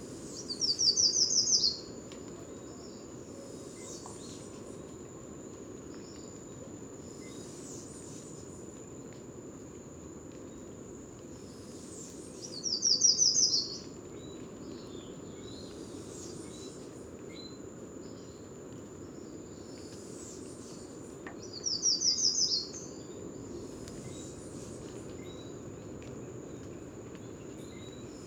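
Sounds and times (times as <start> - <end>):
chorus of crickets: 0.0 - 28.2
bird's bright trilled song: 0.4 - 1.8, 12.5 - 13.9, 21.5 - 22.9.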